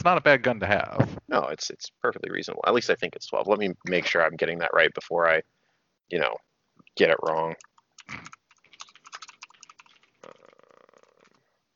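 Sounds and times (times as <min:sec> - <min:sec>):
speech: 0:00.0 - 0:08.4
typing on a computer keyboard: 0:07.3 - 0:10.2.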